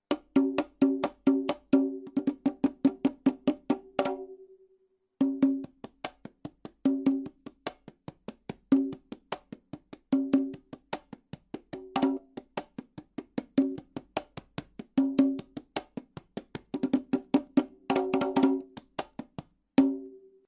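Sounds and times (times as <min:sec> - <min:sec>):
conga: 0:00.0 - 0:04.4, 0:05.2 - 0:20.4.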